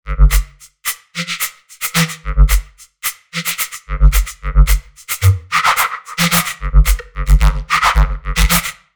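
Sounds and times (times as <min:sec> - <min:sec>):
drums: 0:00.2 - 0:01.0, 0:01.8 - 0:02.8, 0:03.4 - 0:08.7.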